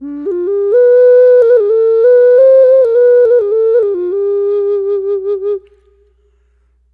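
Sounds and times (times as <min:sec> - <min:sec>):
gourd ocarina playing ambient clean flute tones: 0:00.0 - 0:06.0.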